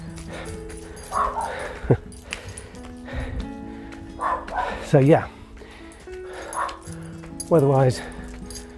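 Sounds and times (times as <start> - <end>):
speech: 0.5 - 2.0, 4.9 - 5.4, 7.5 - 8.2
dog barking: 1.0 - 1.8, 4.2 - 4.9, 6.4 - 6.9.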